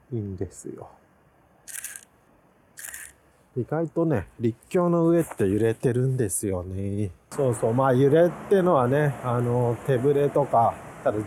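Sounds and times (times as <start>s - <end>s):
speech: 0.1s - 1.0s, 3.6s - 11.2s
camera shutter taking a photo: 1.7s - 2.1s, 2.8s - 3.2s.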